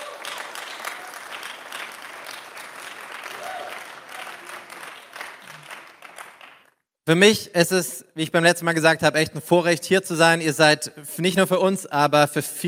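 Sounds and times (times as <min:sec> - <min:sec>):
audience applauding: 0:00.0 - 0:06.8
speech: 0:07.1 - 0:12.6.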